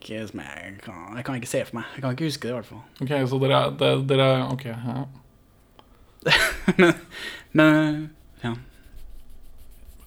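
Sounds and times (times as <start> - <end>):
speech: 0.0 - 5.2, 6.2 - 8.7
laughter: 6.2 - 7.9
pen writing on the inside of a hand: 8.2 - 10.0.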